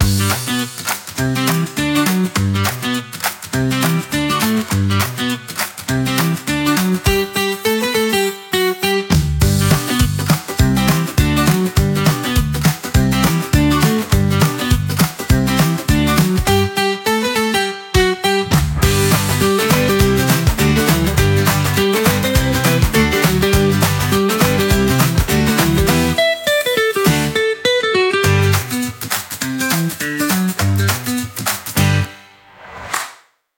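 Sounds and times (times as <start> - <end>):
handclaps at 102 bpm: 0.0 - 7.3, 9.7 - 16.6, 18.5 - 26.2, 28.5 - 32.0
guitar in AI social media music: 0.0 - 32.5.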